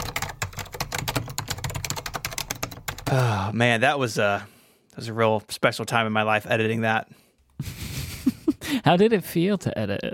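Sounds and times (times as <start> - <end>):
rapid typing on an Apple Extended II keyboard: 0.0 - 3.3
speech: 3.1 - 7.8, 8.7 - 10.1.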